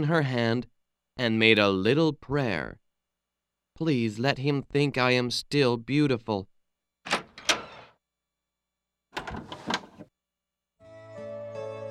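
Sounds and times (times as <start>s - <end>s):
speech: 0.0s - 2.8s, 3.8s - 6.5s
door opening with rattling clunky latch and handle noise: 7.1s - 7.9s, 9.2s - 10.1s.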